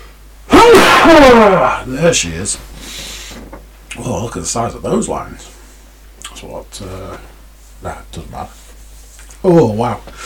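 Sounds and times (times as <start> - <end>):
loud sneeze: 0.5 - 1.8
speech: 1.0 - 3.1, 4.0 - 5.6, 6.4 - 8.6, 9.4 - 10.2.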